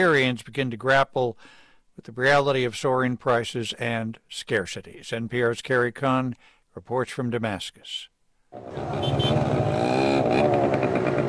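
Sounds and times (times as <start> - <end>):
speech: 0.0 - 10.8
motorcycle engines revving and droning at a traffic circle in Damascus: 8.6 - 11.2
steady roar of busy traffic at a traffic circle in Damascus, Syria: 8.6 - 11.2.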